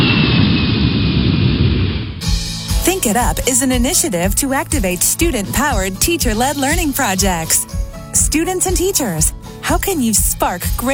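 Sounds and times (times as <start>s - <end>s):
airplane taking off at Williamsport Regional Airport: 0.0s - 2.3s
speech: 3.0s - 10.9s.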